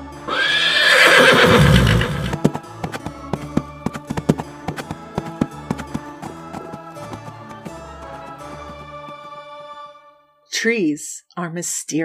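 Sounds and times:
horse whinnying: 0:00.3 - 0:02.4
horse hooves galloping: 0:00.3 - 0:09.4
speech: 0:10.6 - 0:12.0.

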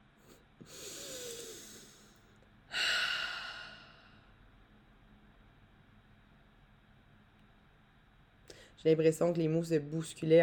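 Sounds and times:
person taking a deep breath to calm down: 0:00.6 - 0:04.3
speech: 0:08.8 - 0:10.4.

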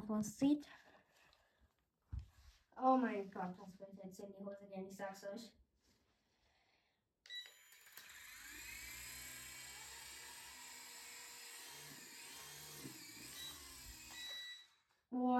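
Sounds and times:
speech: 0:00.1 - 0:00.9, 0:02.8 - 0:05.6, 0:15.1 - 0:15.3
small remote-controlled toy helicopter rotor and motor whine flying indoors: 0:07.4 - 0:14.7.

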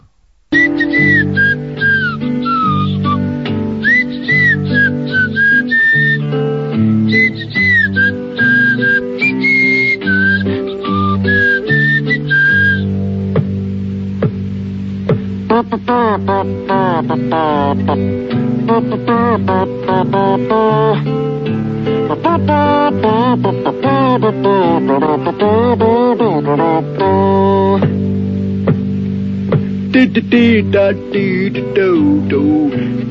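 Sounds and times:
instrumental backing of a 1960s motion picture song: 0:00.0 - 0:33.0
whistled melody from a 1960s motion picture song: 0:00.5 - 0:12.9, 0:22.2 - 0:27.7.

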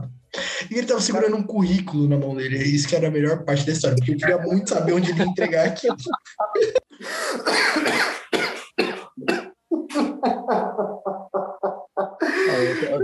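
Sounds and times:
speech: 0:00.6 - 0:08.2
laughter: 0:04.0 - 0:07.0, 0:09.7 - 0:13.0
man's loud raspy smoker's cough: 0:05.1 - 0:10.3.

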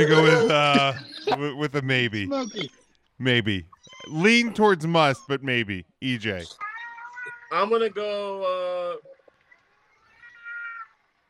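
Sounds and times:
laughter: 0:00.0 - 0:02.3
speech: 0:00.0 - 0:06.7, 0:07.5 - 0:09.2
cat meowing: 0:06.6 - 0:07.6, 0:10.1 - 0:11.0.

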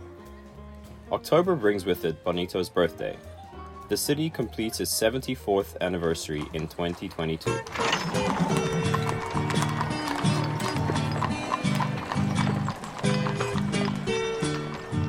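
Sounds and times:
speech: 0:01.1 - 0:03.3, 0:03.9 - 0:08.7
many horse hooves clip-clopping in a horse procession in Bonito: 0:03.5 - 0:15.0.

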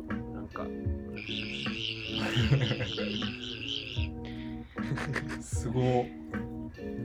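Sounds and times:
speech: 0:00.5 - 0:04.2, 0:05.0 - 0:07.0
person imitating a cicada by whistling and voicing while wiggling the lower lip: 0:01.2 - 0:04.1
laughter: 0:01.3 - 0:03.9, 0:04.8 - 0:05.6.

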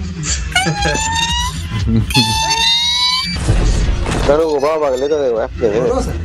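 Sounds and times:
speech: 0:00.2 - 0:02.7, 0:04.3 - 0:06.2
child vocally imitating a superhero sci-fi power-up sound: 0:00.6 - 0:03.4.

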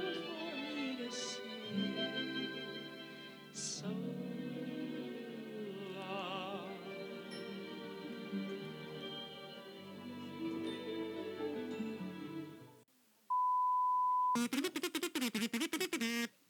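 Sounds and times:
music: 0:00.0 - 0:12.8
loud choppy rapidly stuttering bursts: 0:14.4 - 0:16.4.

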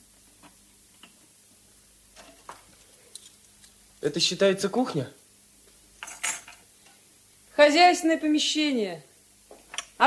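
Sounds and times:
speech: 0:04.0 - 0:05.2, 0:07.6 - 0:09.1
dishes clinking while being washed: 0:06.0 - 0:06.6.

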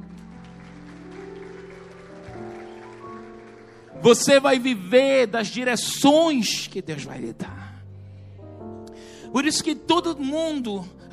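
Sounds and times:
audience applauding: 0:00.0 - 0:04.6
sustained keyboard chords: 0:00.0 - 0:11.1
speech: 0:04.0 - 0:07.6, 0:09.3 - 0:11.1.

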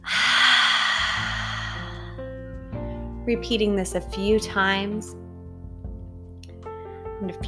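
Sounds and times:
deep breath in and out through the nose or mouth: 0:00.0 - 0:03.2
speech: 0:03.3 - 0:05.2, 0:07.2 - 0:07.4.

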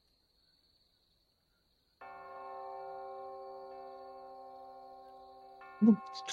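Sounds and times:
church bell striking with rich layered tone: 0:02.0 - 0:06.3
speech: 0:05.8 - 0:06.3.

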